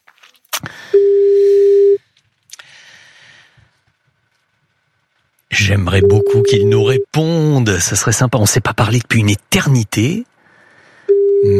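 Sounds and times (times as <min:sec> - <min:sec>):
telephone line ringing tone after dialing: 0:00.9 - 0:02.0, 0:06.0 - 0:07.0, 0:11.1 - 0:11.5
speech: 0:05.8 - 0:10.3.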